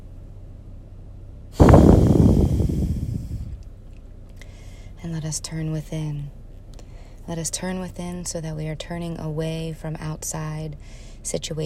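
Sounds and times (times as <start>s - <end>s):
deep breath taken during a morning prayer: 1.6s - 3.6s, 4.4s - 5.0s, 6.8s - 7.2s, 10.8s - 11.2s
speech: 5.1s - 6.4s, 7.3s - 11.6s.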